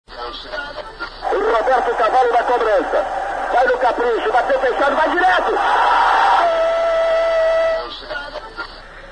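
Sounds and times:
stadium crowd roaring: 0:01.2 - 0:07.9
speech: 0:01.7 - 0:06.1.

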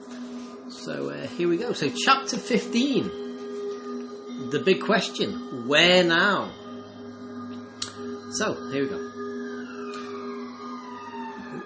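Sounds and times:
civil defense sirens wailing: 0:00.0 - 0:11.6
speech: 0:00.8 - 0:03.2, 0:04.5 - 0:06.6, 0:08.3 - 0:09.2.

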